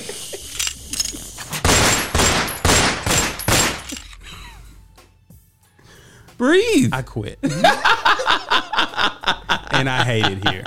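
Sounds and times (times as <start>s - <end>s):
laughter: 0.0s - 0.7s, 7.4s - 10.6s
rapid gunfire bursts: 1.6s - 4.0s
speech: 6.4s - 10.6s.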